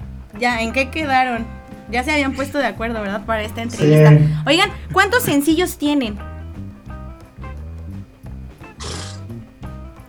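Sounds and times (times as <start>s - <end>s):
speech: 0.3s - 6.3s
horses neighing: 3.5s - 5.5s, 8.8s - 9.4s
laughter: 3.5s - 5.6s.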